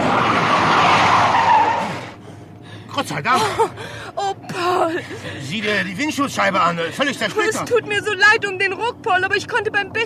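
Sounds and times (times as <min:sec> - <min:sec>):
car tires squealing while braking hard and skidding: 0:00.0 - 0:02.2
speech: 0:03.0 - 0:10.0.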